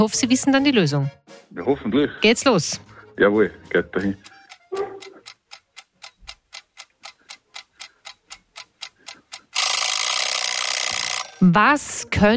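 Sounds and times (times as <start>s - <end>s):
speech: 0.0s - 4.3s, 11.5s - 12.3s
mechanical egg timer ticking: 3.9s - 11.4s.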